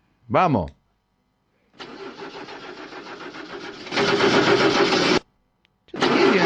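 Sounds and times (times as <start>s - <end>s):
older distributor-ignition petrol car engine cranking on its starter motor: 1.8s - 5.2s, 6.0s - 6.4s.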